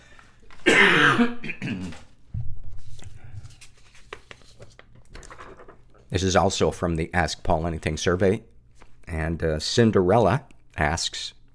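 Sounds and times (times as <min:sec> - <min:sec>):
person coughing: 0:00.6 - 0:02.0
throat clearing: 0:00.6 - 0:02.0
speech: 0:01.2 - 0:01.4, 0:06.2 - 0:08.5, 0:09.1 - 0:11.5.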